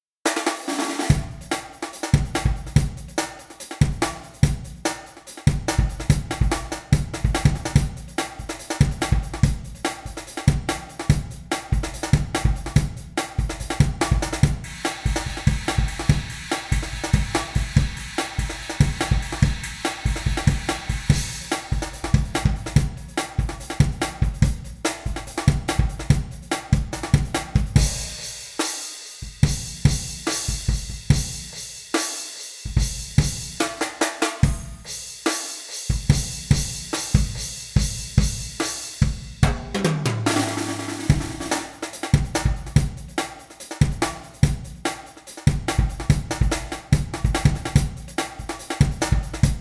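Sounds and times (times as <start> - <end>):
drums tuned high in a beefy room: 0.2 - 49.5.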